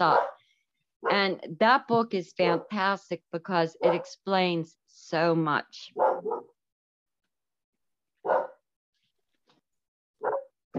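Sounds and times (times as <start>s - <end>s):
speech: 0.0s - 0.3s, 1.2s - 6.3s
dog barking with single sharp barks: 0.0s - 0.4s, 3.8s - 4.1s, 6.0s - 6.6s, 8.2s - 8.6s, 10.2s - 10.6s.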